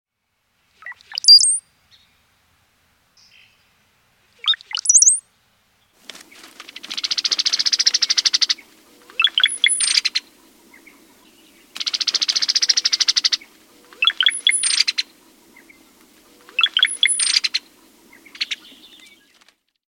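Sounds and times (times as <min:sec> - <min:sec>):
cowbird calling while being fed: 0:06.8 - 0:19.2.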